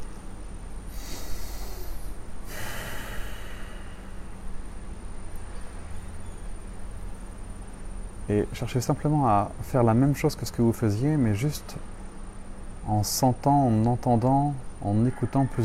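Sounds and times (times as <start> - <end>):
faint steady hiss: 0.0 - 15.6
deep breath drawn in sharply and let out in a long airy exhale: 0.9 - 4.7
speech: 8.3 - 11.9, 12.8 - 15.6.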